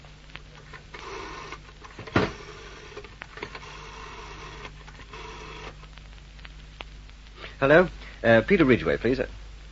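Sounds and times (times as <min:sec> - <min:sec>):
low steady hum: 0:00.0 - 0:09.7
mechanical whirring and ticking of a telephone dial behind a door: 0:00.6 - 0:05.8
speech: 0:07.6 - 0:09.4.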